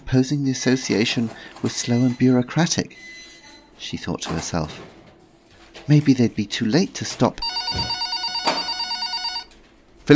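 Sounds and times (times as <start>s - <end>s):
speech: 0.1s - 3.2s, 3.8s - 5.0s, 5.8s - 8.0s
telephone bell ringing with a metallic trill: 7.4s - 9.5s.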